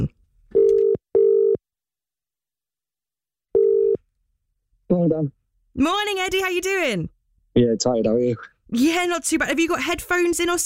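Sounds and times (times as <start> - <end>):
ringing tone of an outgoing telephone call: 0.6 - 1.6, 3.6 - 4.0
speech: 5.0 - 10.6.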